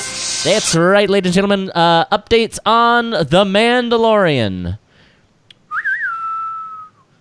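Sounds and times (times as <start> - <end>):
speech: 0.4 - 4.8
person whistling a western-style tune: 5.7 - 7.1.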